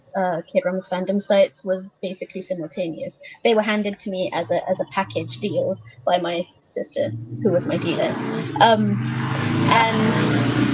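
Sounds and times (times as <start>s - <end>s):
speech: 0.2s - 10.7s
road traffic rumbling: 3.1s - 10.7s
car passing by: 4.3s - 10.7s.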